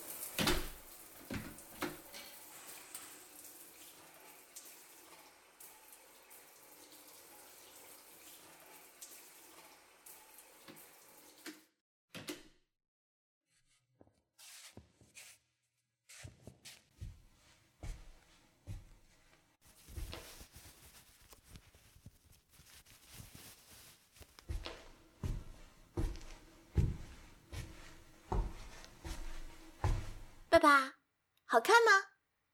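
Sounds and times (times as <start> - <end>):
tap water running while someone bathes: 0.0 - 11.7, 23.8 - 30.5
speech: 30.6 - 32.1.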